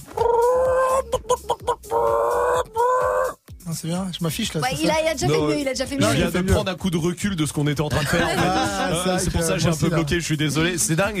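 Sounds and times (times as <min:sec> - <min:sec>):
person imitating a clucking hen: 0:00.1 - 0:03.4
speech: 0:03.8 - 0:11.1
laughter: 0:07.9 - 0:09.9.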